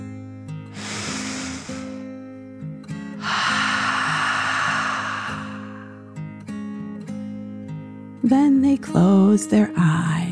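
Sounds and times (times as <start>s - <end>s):
deep breaths in and out: 0.7s - 2.1s, 3.2s - 6.1s
speech: 8.3s - 10.2s.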